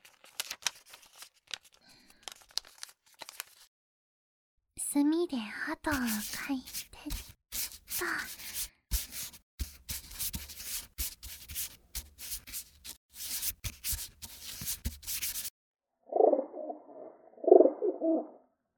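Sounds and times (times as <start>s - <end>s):
speech: 4.8s - 7.3s, 8.0s - 8.4s
dry scratchy rubbing: 5.9s - 15.5s
pigeon cooing: 16.1s - 18.4s.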